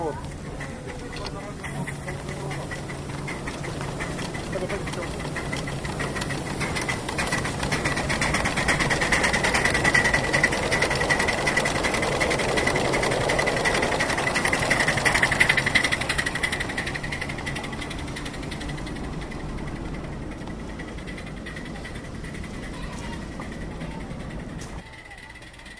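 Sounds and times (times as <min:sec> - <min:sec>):
small passenger-carrying locomotive moving off in reverse on a track: 0:00.0 - 0:25.7.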